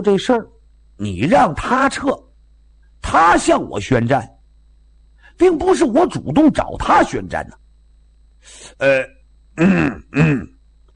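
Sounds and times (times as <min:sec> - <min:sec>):
speech: 0:00.0 - 0:02.3, 0:03.0 - 0:04.3, 0:05.4 - 0:07.6, 0:08.4 - 0:10.5
man clearing his throat: 0:08.8 - 0:10.6.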